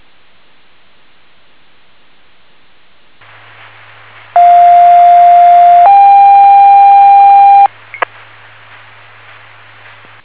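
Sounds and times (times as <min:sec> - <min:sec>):
radio dispatch test tones: 0:04.4 - 0:07.7.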